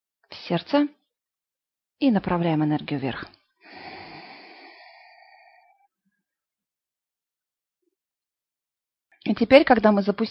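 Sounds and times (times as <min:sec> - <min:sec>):
speech: 0:00.3 - 0:01.0, 0:02.0 - 0:03.4, 0:09.3 - 0:10.3
deep inhale taken during a guided energy meditation: 0:03.6 - 0:05.9.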